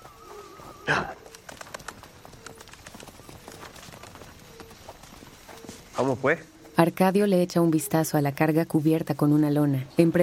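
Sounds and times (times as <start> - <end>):
rustling: 0.0 - 6.8
horse hooves clip-clopping at a walking pace: 0.0 - 7.5
speech: 0.9 - 1.2, 6.0 - 10.2.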